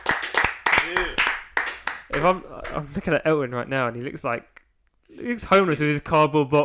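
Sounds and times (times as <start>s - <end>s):
small group clapping: 0.0s - 3.1s
speech: 2.2s - 4.5s, 5.2s - 6.6s.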